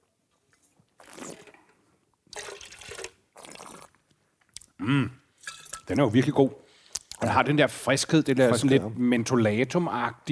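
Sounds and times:
2019 red wine being sipped and slurped: 0.5 - 4.7
speech: 4.8 - 5.2, 5.9 - 6.6, 7.2 - 10.3.

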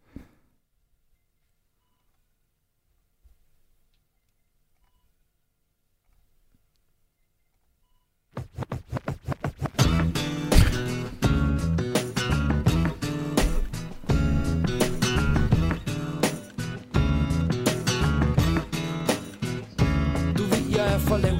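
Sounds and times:
Danish hip-hop song with punchy beat and heavy bass: 9.8 - 21.3.

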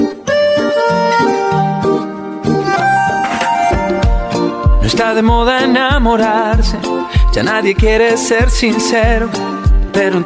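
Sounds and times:
bright pop song with punchy bass line: 0.0 - 10.2
speech: 5.0 - 10.2.

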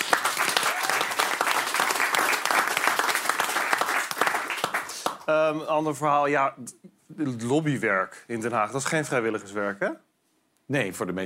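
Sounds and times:
crowd applauding: 0.0 - 5.2
speech: 5.3 - 10.1, 10.7 - 11.2.

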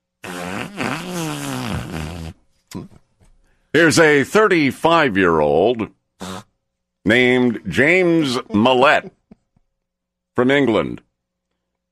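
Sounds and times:
long loud buzzy fart with wavering pitch: 0.2 - 2.9, 6.2 - 6.6
speech: 3.7 - 6.0, 7.1 - 9.2, 10.4 - 11.0.

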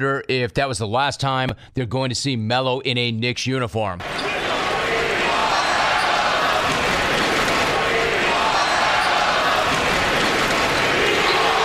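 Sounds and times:
speech: 0.0 - 4.6
large arena crowd roaring: 4.0 - 11.6.

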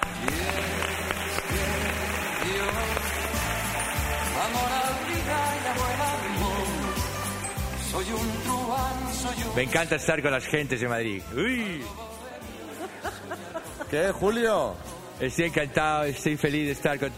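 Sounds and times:
crowd applauding: 0.0 - 9.4
loud music with a rhythmic bass line: 0.0 - 9.8
speech: 8.0 - 12.1, 13.9 - 17.1
laughter: 12.4 - 14.5.

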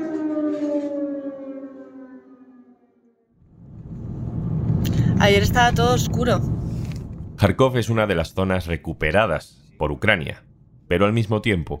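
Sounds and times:
air raid siren wailing: 0.0 - 7.4
rumbling noise: 3.4 - 11.2
speech: 5.2 - 6.6, 7.4 - 11.7.

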